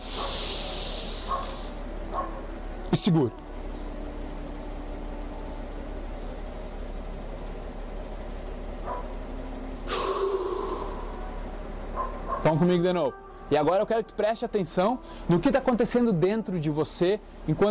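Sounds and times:
deep breath drawn in: 0.0s - 1.4s, 9.9s - 11.2s
low steady hum: 0.0s - 17.6s
speech: 2.9s - 3.5s, 12.4s - 17.6s.

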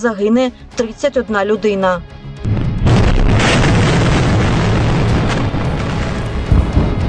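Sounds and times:
speech: 0.0s - 2.5s
heavy rumbling explosions: 2.4s - 7.0s
crackling debris-like noise: 2.5s - 7.0s.

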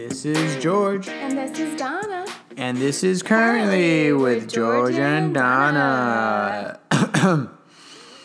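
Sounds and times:
speech: 0.2s - 7.5s
throaty cough or throat-clearing: 6.9s - 7.7s.

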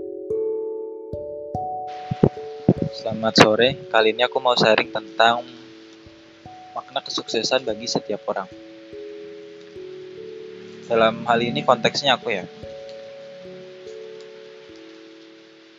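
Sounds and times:
heavy rain pouring steadily: 1.9s - 15.7s
speech: 2.1s - 5.6s, 6.9s - 8.6s, 10.9s - 12.6s
low sustained tonal drone: 9.3s - 13.9s.

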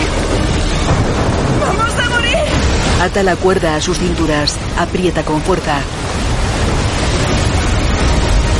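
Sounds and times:
rushing floodwater: 0.0s - 8.5s
speech: 3.0s - 6.0s.

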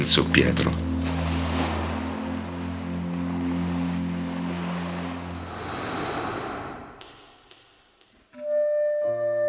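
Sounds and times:
speech: 0.0s - 0.8s
ocean waves rolling: 1.0s - 7.0s
low droning hum: 4.8s - 7.1s
bright ringing chime-like tones: 6.2s - 9.3s.

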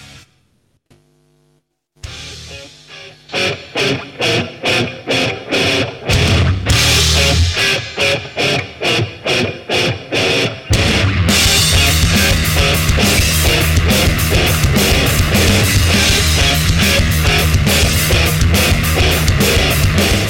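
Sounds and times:
distorted guitars chugging: 0.0s - 0.5s, 2.0s - 20.2s
heavy metal single by a science-fiction metal band: 2.0s - 20.2s
pounding drums: 10.7s - 20.2s.

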